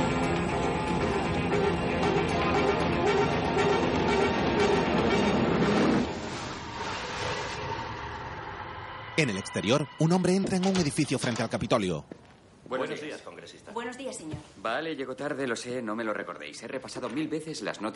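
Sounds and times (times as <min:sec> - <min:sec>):
subway train arriving at a station: 0:00.2 - 0:10.3
speech: 0:09.2 - 0:17.9.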